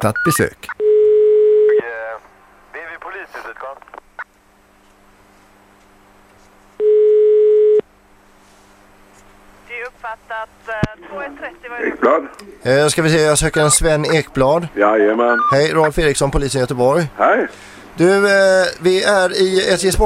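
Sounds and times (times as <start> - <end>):
speech: 0.0 - 0.8, 10.4 - 20.0
outgoing phone call ringback tone: 0.8 - 1.8, 6.8 - 7.8.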